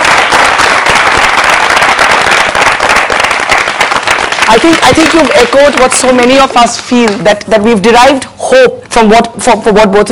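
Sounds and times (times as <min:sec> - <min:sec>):
audience applause at a question-and-answer session: 0:00.0 - 0:07.2
speech: 0:04.5 - 0:10.1.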